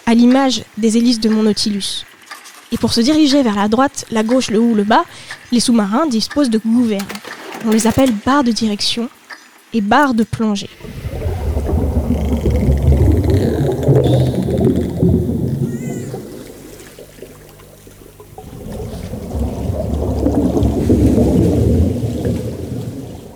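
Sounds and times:
speech: 0:00.1 - 0:02.1, 0:02.7 - 0:11.0
deep rumbling underwater drone: 0:10.7 - 0:23.3
eerie high whistles and sweeping tonal cries underwater: 0:12.4 - 0:16.8.

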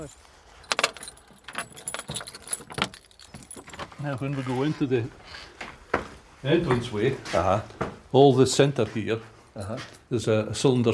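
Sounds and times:
speech: 0:00.0 - 0:00.3, 0:04.0 - 0:05.4, 0:06.4 - 0:10.9
bunch of building keys jangling: 0:00.0 - 0:04.1.

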